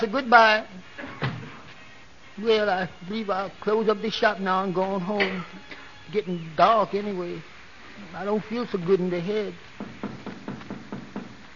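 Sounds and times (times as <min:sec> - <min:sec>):
speech: 0:00.0 - 0:00.9, 0:02.4 - 0:09.7
steady hum: 0:00.0 - 0:11.5
knocking on a wooden back door: 0:09.8 - 0:11.4.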